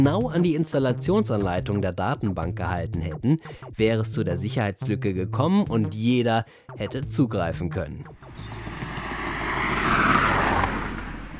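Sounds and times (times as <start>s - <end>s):
speech: 0.0s - 8.5s
car driving past: 8.2s - 11.3s.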